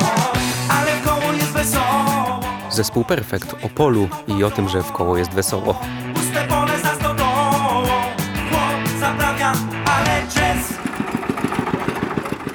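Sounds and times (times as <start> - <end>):
music: 0.0 - 10.9
speech: 2.8 - 6.6
farm machinery rumbling with a throbbing rhythm: 10.0 - 12.5.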